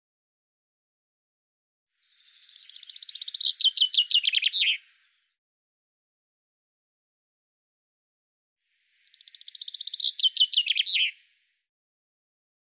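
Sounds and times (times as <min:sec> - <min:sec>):
Common chaffinch song: 0:02.0 - 0:05.2, 0:08.8 - 0:11.5.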